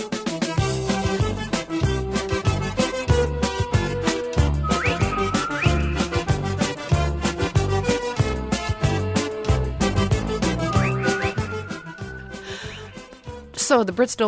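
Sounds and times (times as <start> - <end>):
bouncy oompah-style dance tune: 0.3 - 13.2
slide whistle swooping upward: 4.6 - 6.5, 10.5 - 13.1
speech: 13.7 - 14.2.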